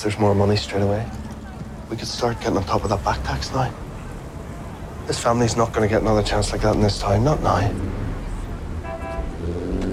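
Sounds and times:
speech: 0.0s - 1.2s, 1.9s - 3.8s, 5.1s - 8.0s
passing street traffic rumble: 0.0s - 9.9s
brief horn-like toot: 8.8s - 9.9s.

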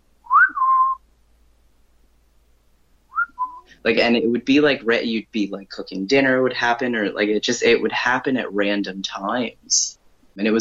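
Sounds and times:
person whistling imitation of an eerie two-note whistle: 0.3s - 1.0s, 3.2s - 3.7s
speech: 3.8s - 10.5s.

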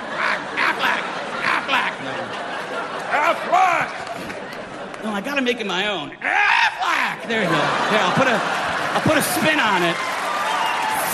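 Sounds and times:
laughter: 0.0s - 5.5s, 6.2s - 10.0s
man's voice imitating duck quacks: 0.1s - 1.9s
speech: 5.0s - 10.1s.

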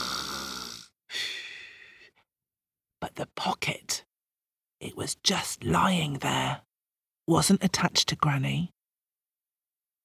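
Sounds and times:
storyteller's voice imitating snoring: 0.0s - 1.0s
speech: 3.2s - 3.9s, 4.9s - 6.7s, 7.3s - 8.8s.

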